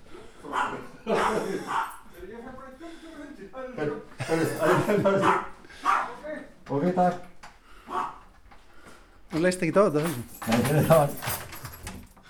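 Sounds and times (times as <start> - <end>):
excited frantic dog barking and yipping: 0.4 - 2.1, 4.6 - 6.2, 7.9 - 8.3
laughter: 0.5 - 2.1, 3.2 - 5.8
speech: 3.8 - 5.5, 6.8 - 7.3, 9.4 - 11.4.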